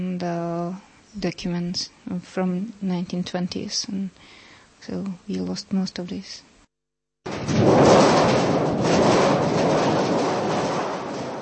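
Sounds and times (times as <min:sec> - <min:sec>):
speech: 0:00.0 - 0:06.5
large metal thunder sheet shaken in a theatre to mimic a storm: 0:07.3 - 0:11.4.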